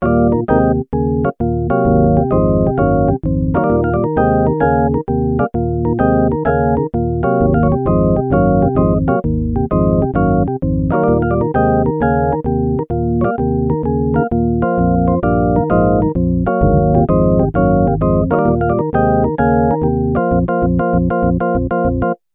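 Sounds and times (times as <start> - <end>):
organ sound from Yamaha TX81Z synthesizer: 0.0 - 22.2.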